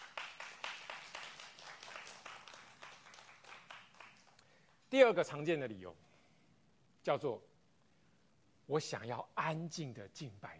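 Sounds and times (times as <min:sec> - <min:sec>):
audience clapping hands in rhythm: 0:00.0 - 0:04.9
speech: 0:04.9 - 0:06.1, 0:07.1 - 0:07.5, 0:08.7 - 0:10.5.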